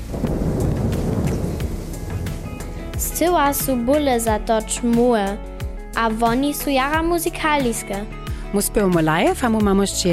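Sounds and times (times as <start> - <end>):
steady rain pouring in a storm: 0.0 - 4.5
deep rumbling wind: 0.0 - 6.6
speech: 3.2 - 10.1.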